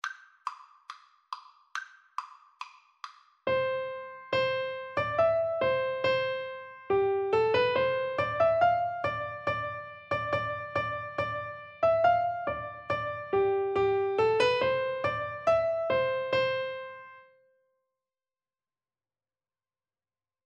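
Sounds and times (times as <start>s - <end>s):
piano duet: 3.5s - 17.3s.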